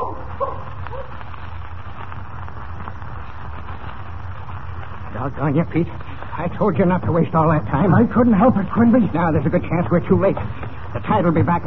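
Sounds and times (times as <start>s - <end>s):
dog bark: 0.0s - 1.2s
steady rushing noise: 0.0s - 11.6s
speech: 5.2s - 11.6s.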